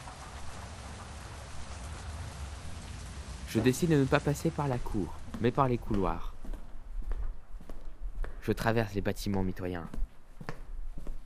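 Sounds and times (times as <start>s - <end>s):
heavy rain pouring: 0.0s - 5.9s
speech: 3.5s - 6.3s, 8.4s - 10.1s.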